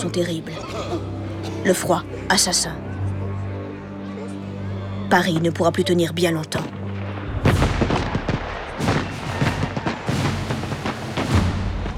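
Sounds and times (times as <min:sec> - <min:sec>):
speech: 0:00.0 - 0:02.9, 0:05.1 - 0:06.8
distant artillery cannon fire: 0:06.9 - 0:11.9.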